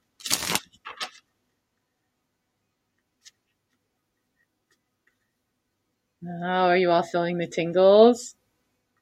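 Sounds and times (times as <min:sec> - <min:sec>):
deck of cards being shuffled: 0:00.2 - 0:01.2
speech: 0:06.2 - 0:08.4.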